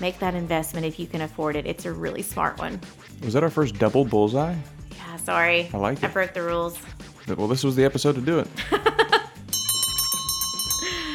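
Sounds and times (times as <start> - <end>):
speech: 0.0 - 9.2
burst of laughter: 8.6 - 9.3
closing bell ringing: 9.5 - 10.9.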